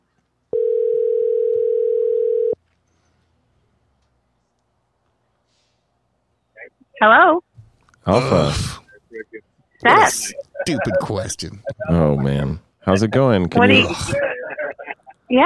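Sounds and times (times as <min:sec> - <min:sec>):
telephone tone while calling someone: 0:00.6 - 0:02.6
speech: 0:07.0 - 0:07.4, 0:08.1 - 0:08.8, 0:09.8 - 0:14.3
laughter: 0:08.9 - 0:13.0, 0:13.6 - 0:15.3.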